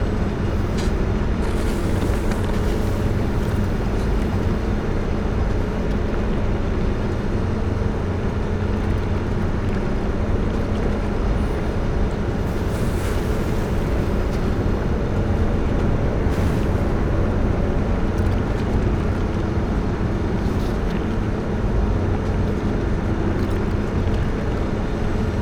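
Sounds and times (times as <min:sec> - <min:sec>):
mining station hum: 0:00.0 - 0:25.4.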